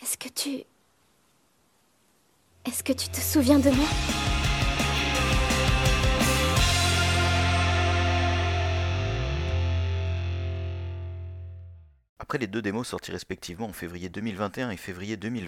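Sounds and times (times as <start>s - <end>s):
speech: 0.3s - 0.7s, 2.6s - 4.2s, 12.3s - 15.4s
loud distorted podcast intro music jingle: 3.0s - 11.7s.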